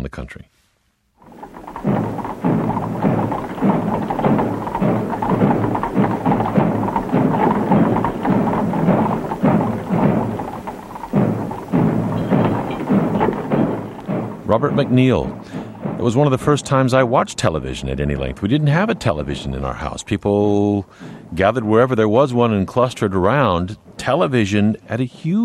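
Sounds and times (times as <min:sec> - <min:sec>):
speech: 0:00.0 - 0:00.7, 0:14.5 - 0:25.4
muffled drums beating a slow cadence: 0:01.2 - 0:24.6
deep rumbling wash: 0:01.2 - 0:25.3.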